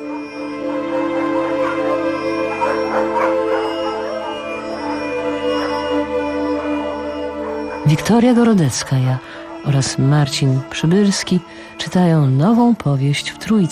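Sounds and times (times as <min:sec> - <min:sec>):
steady sustained tonal backdrop: 0:00.0 - 0:13.6
dogs barking in a village on a cold clear still night: 0:01.4 - 0:06.0, 0:06.6 - 0:10.1
speech: 0:08.0 - 0:13.6.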